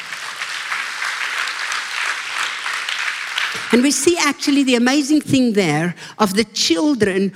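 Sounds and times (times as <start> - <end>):
large audience clapping: 0.0 - 4.0
speech: 3.7 - 7.3.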